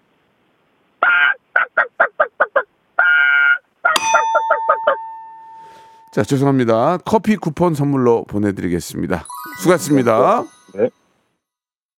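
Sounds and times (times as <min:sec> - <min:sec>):
voice imitating a wild Brazilian chicken with loud nasal squawks: 0:01.0 - 0:04.0
bright bell dinging: 0:04.0 - 0:06.5, 0:09.3 - 0:10.9
speech: 0:06.1 - 0:11.0.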